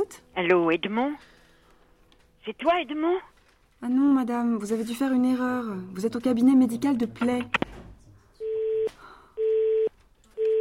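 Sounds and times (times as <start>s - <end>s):
speech: 0.1s - 1.4s, 2.4s - 7.7s
telephone busy tone after a caller hangs up: 8.4s - 10.5s.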